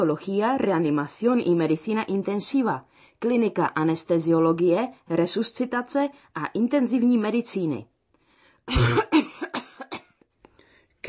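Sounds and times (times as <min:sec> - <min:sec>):
speech: 0:00.0 - 0:07.9, 0:08.7 - 0:09.3
harsh chesty coughing: 0:08.7 - 0:10.2.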